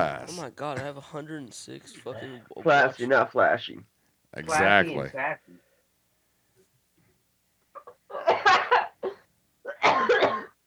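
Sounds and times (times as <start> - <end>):
speech: 0.0 - 5.6
person coughing: 8.1 - 10.6.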